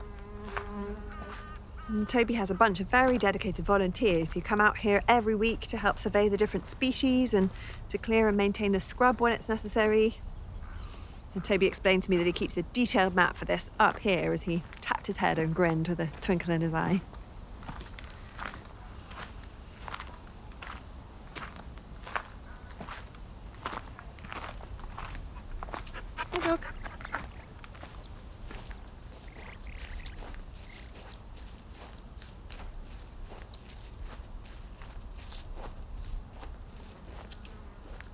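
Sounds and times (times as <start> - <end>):
speech: 1.9 - 10.3, 11.4 - 17.1
footsteps walking across the commons: 21.4 - 38.1.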